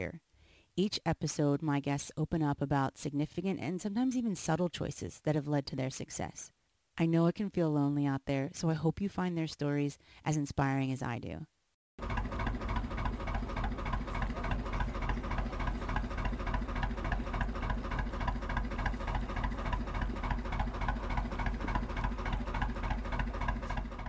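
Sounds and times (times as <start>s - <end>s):
speech: 0.0s - 12.2s
boat engines chugging along a canal in London: 12.0s - 24.0s.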